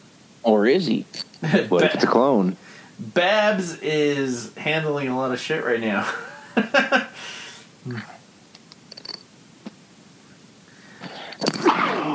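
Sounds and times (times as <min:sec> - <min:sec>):
quiet rustling: 0:00.0 - 0:12.1
speech: 0:00.4 - 0:08.1
laughter: 0:01.4 - 0:02.5, 0:05.9 - 0:08.1
person sneezing: 0:07.8 - 0:08.2.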